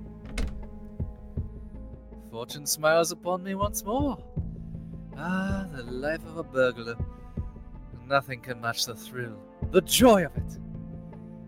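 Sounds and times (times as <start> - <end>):
glass door latch rattled and worked with a metallic clack: 0.0 - 1.4
speech: 2.3 - 4.4, 5.2 - 7.1, 8.1 - 10.6.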